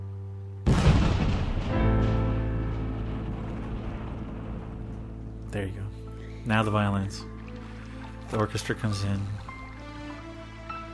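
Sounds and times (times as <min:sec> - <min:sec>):
loud explosion with rumbling roar: 0:00.7 - 0:06.1
steady low droning tone: 0:01.9 - 0:06.4
speech: 0:05.5 - 0:07.3, 0:08.3 - 0:09.4.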